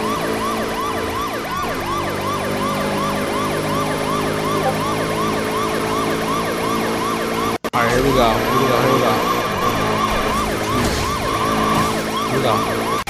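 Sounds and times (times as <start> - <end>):
police car siren wailing: 0.0 - 13.0
speech: 12.4 - 12.8.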